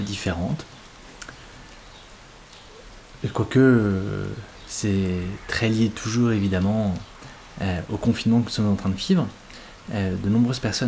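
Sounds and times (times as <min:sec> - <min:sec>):
speech: 0:00.0 - 0:00.8, 0:03.2 - 0:10.8
birds chirping outdoors: 0:00.0 - 0:10.8
rain falling: 0:00.0 - 0:10.8.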